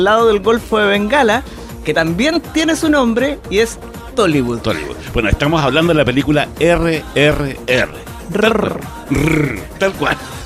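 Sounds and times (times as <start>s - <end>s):
speech: 0.0s - 10.4s
person imitating a tiger roar: 7.4s - 9.8s.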